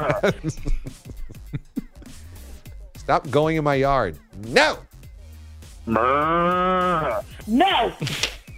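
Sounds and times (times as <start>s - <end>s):
speech: 0.0s - 1.1s, 3.1s - 4.9s, 5.8s - 8.3s
laughter: 0.0s - 2.2s
cow mooing: 5.8s - 7.3s.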